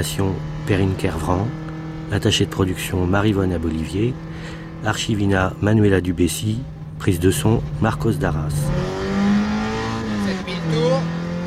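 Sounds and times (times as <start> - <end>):
speech: 0.0 - 9.0
car engine revving hard through the gears: 0.0 - 11.4.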